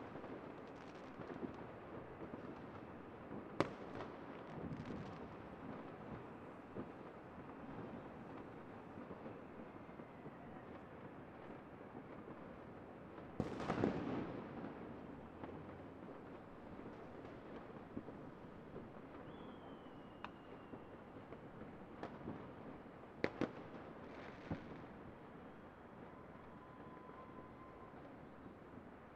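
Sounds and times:
New Year's Eve fireworks rumbling: 0.0 - 29.1.

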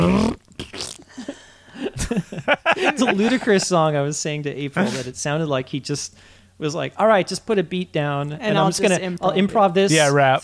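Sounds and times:
voice imitating a cheap buzzy fart sound effect: 0.0 - 1.2
laughter: 1.2 - 3.8
speech: 2.9 - 10.4.

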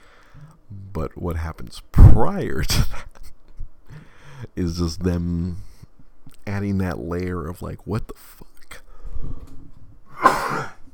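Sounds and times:
speech: 1.0 - 3.1, 4.6 - 5.7, 6.4 - 8.5
harsh wet cough of person with phlegm in the throat: 10.1 - 10.9.

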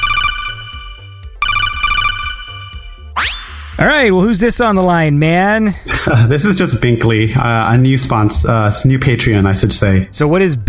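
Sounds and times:
melodic phone ringtone for an incoming call: 0.0 - 3.2
speech: 3.8 - 10.6
laughter: 5.8 - 7.0.

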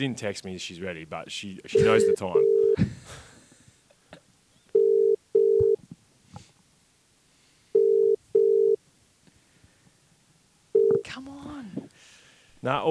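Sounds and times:
speech: 0.0 - 3.3, 12.6 - 12.8
phone ringback tone of an unanswered outgoing call: 1.7 - 2.8, 4.7 - 5.8, 7.7 - 8.8, 10.7 - 11.1.

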